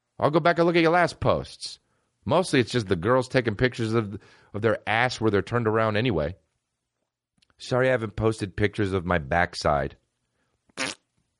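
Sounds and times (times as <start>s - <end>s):
speech: 0.2s - 6.4s, 7.6s - 10.0s
loud buzzy fart sound effect: 10.8s - 11.1s.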